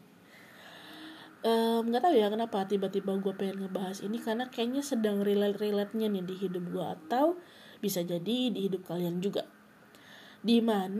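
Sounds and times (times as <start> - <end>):
chorus of frogs croaking at night: 0.5 - 7.7
speech: 1.4 - 9.6, 10.4 - 10.9.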